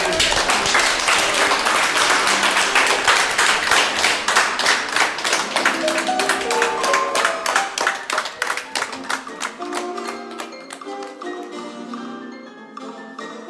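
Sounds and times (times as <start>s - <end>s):
audience applauding: 0.0s - 11.6s
rhythmic clapping of a crowd: 0.0s - 11.9s
faint melody: 5.3s - 11.0s.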